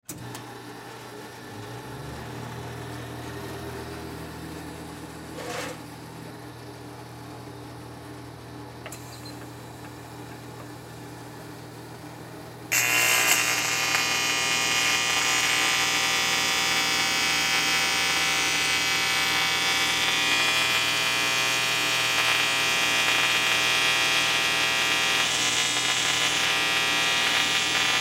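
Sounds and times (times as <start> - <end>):
TIG welder sparking: 12.7 - 27.9.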